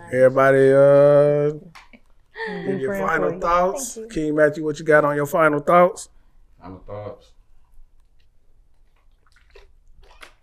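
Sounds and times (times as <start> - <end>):
speech: 0.1 - 1.8, 2.4 - 7.4
person slurping a drink: 9.0 - 10.4.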